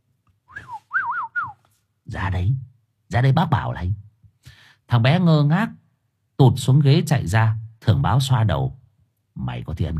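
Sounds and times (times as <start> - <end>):
old man whistling a short tune: 0.5 - 1.6
speech: 2.1 - 4.0, 4.9 - 5.8, 6.4 - 8.8, 9.4 - 9.9.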